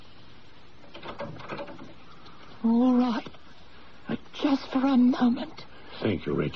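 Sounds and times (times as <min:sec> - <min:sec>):
quiet steady hiss: 0:00.0 - 0:06.5
door opening and closing with soft creaking and knocking: 0:00.8 - 0:02.0
speech: 0:02.6 - 0:03.3, 0:04.6 - 0:06.5.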